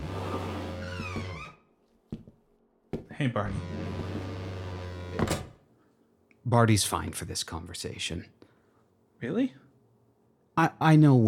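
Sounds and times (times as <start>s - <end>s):
door opening or closing with a knock and clatter: 0.0s - 1.6s, 3.4s - 5.6s
steady electrical hum: 0.0s - 11.2s
speech: 3.2s - 4.0s, 6.5s - 8.4s, 9.2s - 9.6s, 10.6s - 11.2s.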